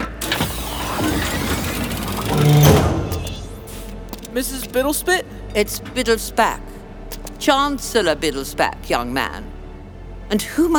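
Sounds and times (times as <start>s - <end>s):
motorized door opening with a mechanical whir and rumble: 0.0s - 4.9s
speech: 4.4s - 6.7s, 7.4s - 9.5s, 10.3s - 10.7s.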